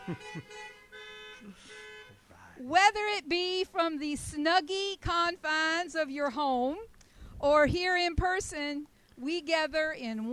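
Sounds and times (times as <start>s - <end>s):
several car horns honking: 0.0s - 2.9s
speech: 0.1s - 0.8s, 1.4s - 1.9s, 2.6s - 10.3s.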